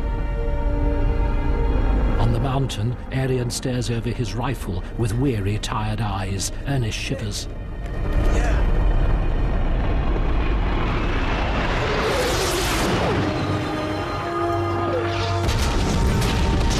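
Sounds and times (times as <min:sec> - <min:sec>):
constant roar: 0:00.0 - 0:16.7
speech: 0:02.6 - 0:07.6
rushing blast: 0:08.4 - 0:14.4, 0:15.0 - 0:16.7
missiles fired from an A-10 aircraft exploding on a snowy mountain at night: 0:15.2 - 0:16.7.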